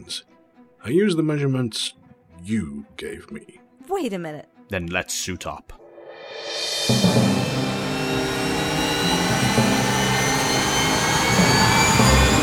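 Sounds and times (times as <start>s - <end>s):
speech: 0.0s - 7.4s
black helicopter turbine engine spooling up: 6.1s - 12.4s.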